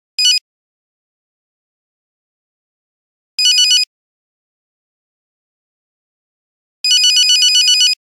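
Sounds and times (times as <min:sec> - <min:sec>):
Nokia phone buzzer: 0:00.2 - 0:00.4, 0:03.4 - 0:03.9, 0:06.9 - 0:08.0.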